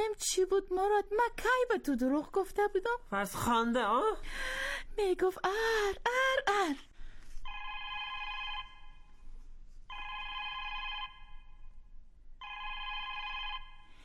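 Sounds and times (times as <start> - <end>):
speech: 0.0 - 6.9
electronic telephone ringing: 7.5 - 9.1, 9.9 - 11.6, 12.4 - 14.0.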